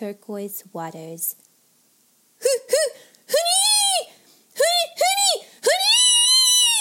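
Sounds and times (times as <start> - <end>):
speech: 0.0 - 1.5
playful squealing screams: 2.4 - 4.2, 4.9 - 6.7.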